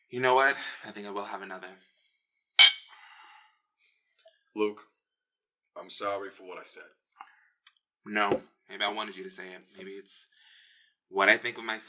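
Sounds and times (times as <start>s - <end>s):
speech: 0.1s - 1.9s, 4.5s - 4.9s, 5.8s - 7.0s, 8.0s - 10.5s, 11.1s - 11.8s
glasses clinking in a toast: 2.6s - 2.9s.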